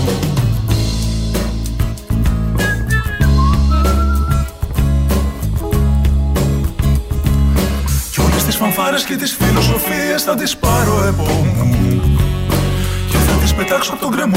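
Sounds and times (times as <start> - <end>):
busy music track with heavy drums and bass: 0.0 - 8.7, 9.4 - 10.0, 10.6 - 14.3
person whistling a melody: 2.6 - 4.6
speech: 9.0 - 12.2, 13.6 - 14.3.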